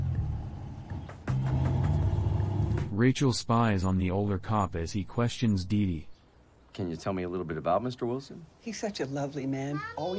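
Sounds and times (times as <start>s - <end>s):
car engine rumbling while reversing and driving away: 0.0s - 3.1s
speech: 3.0s - 6.1s, 6.8s - 10.1s.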